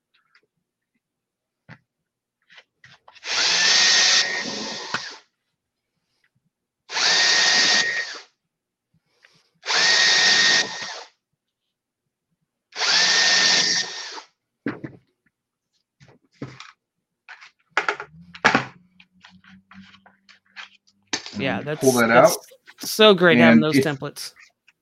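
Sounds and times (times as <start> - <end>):
power drill drilling through plastic into scrap wood: 3.1 - 5.3, 6.9 - 8.4, 9.6 - 11.2, 12.7 - 14.4
speech: 21.5 - 22.4, 23.0 - 24.4.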